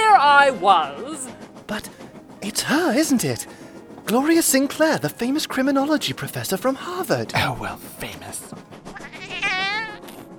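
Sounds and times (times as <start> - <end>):
speech: 0.4 - 8.6
black cat meowing: 9.0 - 10.2.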